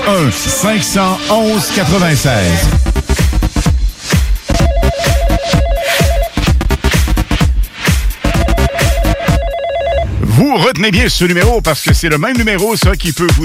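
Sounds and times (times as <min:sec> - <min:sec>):
speech: 0:00.1 - 0:02.9, 0:10.6 - 0:13.4
steady rhythmic beat: 0:00.8 - 0:09.7, 0:10.8 - 0:13.4
telephone ringing with electronic trill: 0:04.5 - 0:06.4, 0:08.3 - 0:10.2.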